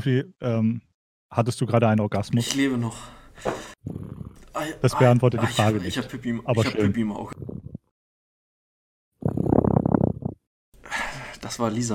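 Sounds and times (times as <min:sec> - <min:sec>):
speech: 0:00.0 - 0:07.6, 0:11.5 - 0:11.9
cat low rumbling vocalization: 0:03.8 - 0:04.4, 0:07.3 - 0:07.9, 0:09.2 - 0:10.5.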